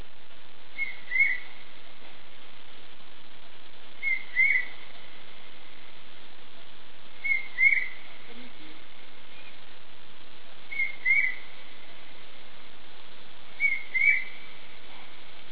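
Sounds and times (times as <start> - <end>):
large hawk-cuckoo calling: 0.8 - 1.6, 4.0 - 4.8, 7.2 - 8.0, 10.7 - 11.5, 13.6 - 14.5.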